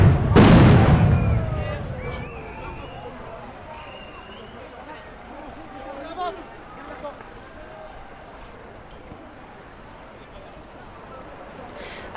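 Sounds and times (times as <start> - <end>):
GM2L stun grenade blast: 0.0 - 2.3
outdoor crowd noise: 0.0 - 12.1
voices: 1.0 - 12.1.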